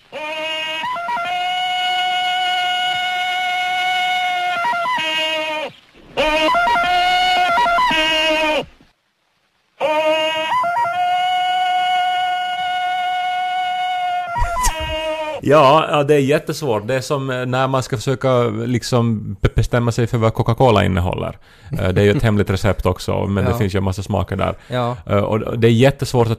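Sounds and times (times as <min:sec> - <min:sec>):
blended dog opera singer hyena camel and violin wails: 0:00.0 - 0:08.8, 0:09.8 - 0:15.4
speech: 0:15.5 - 0:26.3.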